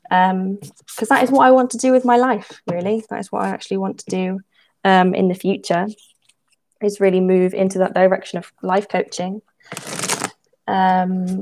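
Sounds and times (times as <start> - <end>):
speech: 0.1 - 6.1, 6.8 - 10.0, 10.7 - 11.4
tarot cards being shuffled: 9.7 - 10.3.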